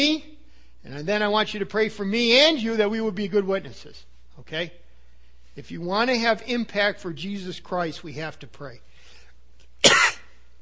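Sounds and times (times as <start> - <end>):
speech: 0.0 - 4.8, 5.6 - 8.9
throat clearing: 9.8 - 10.3
person with a cold coughing: 9.8 - 10.4.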